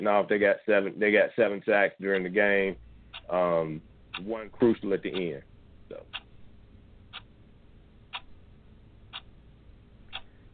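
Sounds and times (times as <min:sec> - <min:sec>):
speech: 0:00.0 - 0:06.2
low hum: 0:00.0 - 0:10.5
ticking clock timer sound effect: 0:02.1 - 0:10.5.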